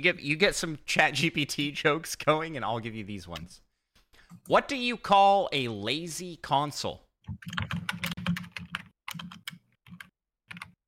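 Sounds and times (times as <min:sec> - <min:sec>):
speech: 0:00.0 - 0:03.6, 0:04.4 - 0:07.8
typing on a computer keyboard: 0:07.3 - 0:10.8.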